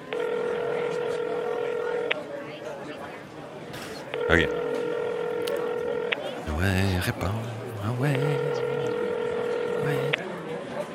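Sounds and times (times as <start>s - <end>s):
steady electronic telephone tone while calling an emergency number: 0.0s - 2.1s, 4.2s - 6.4s, 8.0s - 10.2s
speech: 4.3s - 4.6s, 6.6s - 8.7s, 9.8s - 10.2s.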